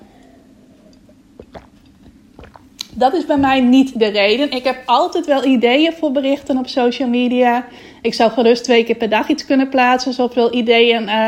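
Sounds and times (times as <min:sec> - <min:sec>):
low hum: 0:00.0 - 0:11.2
wet mouth clicks while sipping water: 0:00.9 - 0:03.0
speech: 0:03.0 - 0:11.2.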